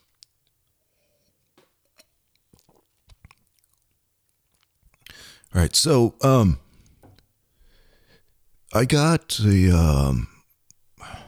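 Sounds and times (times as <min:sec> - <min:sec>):
soft wet mouth clicks while sipping beer: 0:02.0 - 0:03.9
gulping swallows of beer: 0:02.5 - 0:03.8
speech: 0:05.5 - 0:06.6, 0:08.7 - 0:10.3.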